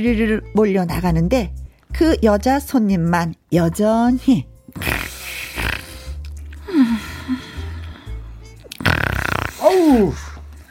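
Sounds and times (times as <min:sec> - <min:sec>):
speech: 0:00.0 - 0:04.9
person mimicking loud snoring of a sleeping female bus passenger: 0:04.7 - 0:07.1, 0:08.7 - 0:10.2.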